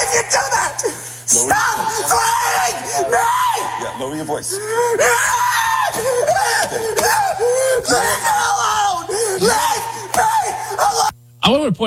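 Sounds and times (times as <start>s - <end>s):
laughter: 0.0s - 11.1s
man screaming at police officer while being pepper-sprayed: 0.0s - 11.2s
steady low hum: 0.0s - 11.8s
speech: 1.3s - 9.6s, 11.4s - 11.8s.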